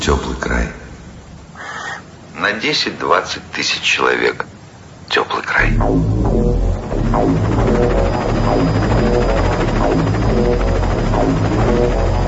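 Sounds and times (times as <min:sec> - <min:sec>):
speech: 0:00.1 - 0:00.8, 0:02.5 - 0:04.5, 0:05.1 - 0:06.4, 0:07.2 - 0:08.9, 0:10.5 - 0:12.1
brightly painted helicopter rotor circling over a small town: 0:05.6 - 0:12.2.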